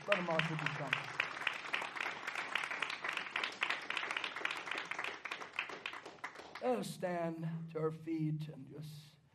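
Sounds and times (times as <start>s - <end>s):
church audience clapping during preaching: 0.0s - 6.8s
speech: 0.1s - 1.2s, 6.6s - 9.1s.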